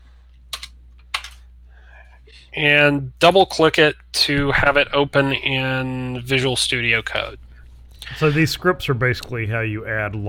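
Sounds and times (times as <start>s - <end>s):
low steady hum: 0.0s - 10.2s
computer keyboard typing: 0.5s - 1.4s
speech: 2.3s - 7.4s, 8.0s - 10.2s.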